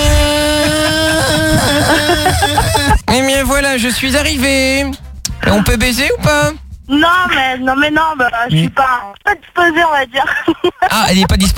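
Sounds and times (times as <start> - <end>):
motor scooter engine revving as its rider sets off: 0.0 - 3.0
laughter: 0.4 - 3.2, 10.2 - 11.5
speech: 3.5 - 11.5.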